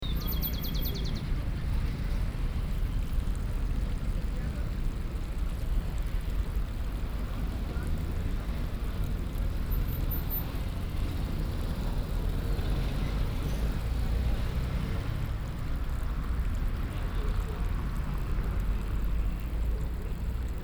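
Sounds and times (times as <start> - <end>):
urban birds in Bogota: 0.0 - 1.5
urban water in Bogota: 0.1 - 20.6.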